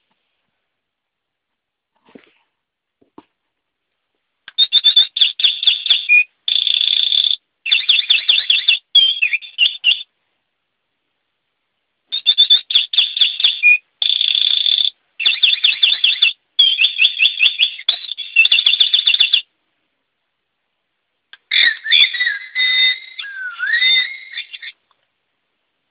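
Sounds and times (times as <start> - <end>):
English bird: 4.5 - 6.3, 7.7 - 10.1, 12.1 - 19.5, 21.4 - 24.8.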